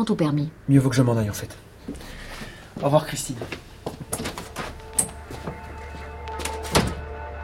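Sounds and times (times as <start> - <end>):
speech: 0.0 - 2.2, 2.8 - 3.7
door pushed shut with a solid thunk: 4.1 - 7.1.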